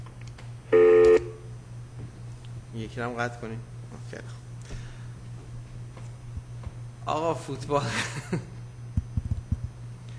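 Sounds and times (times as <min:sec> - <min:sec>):
low hum: 0:00.0 - 0:10.1
phone ringing tone in the audience: 0:00.7 - 0:01.4
speech: 0:02.8 - 0:04.5, 0:07.1 - 0:08.6
laughter: 0:07.8 - 0:08.6.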